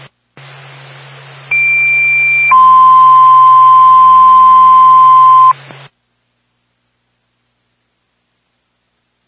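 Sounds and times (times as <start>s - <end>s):
fire department radio dispatch paging alert tone: 1.5s - 5.5s.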